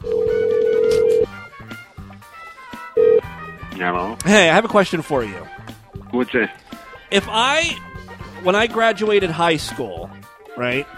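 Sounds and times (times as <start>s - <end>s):
loud steady telephone dial tone: 0.0s - 1.3s
speech: 3.8s - 10.9s.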